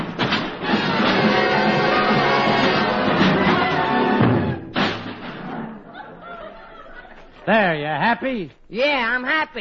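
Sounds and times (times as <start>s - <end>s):
musical instruments crashing and banging together: 0.0s - 5.9s
laughter: 5.8s - 8.0s
speech: 7.5s - 9.5s.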